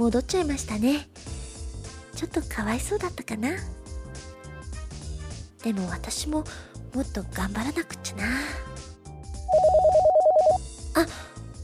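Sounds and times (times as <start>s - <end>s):
speech: 0.0s - 1.3s, 2.2s - 3.8s, 5.6s - 8.6s, 11.0s - 11.2s
soft music: 0.0s - 11.6s
telephone ringing with a rapid electronic trill: 9.5s - 10.6s.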